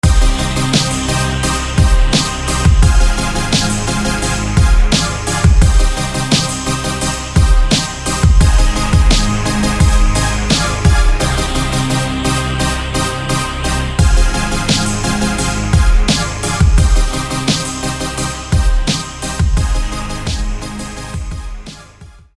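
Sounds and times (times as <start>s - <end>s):
gated synth: 0.0s - 22.3s.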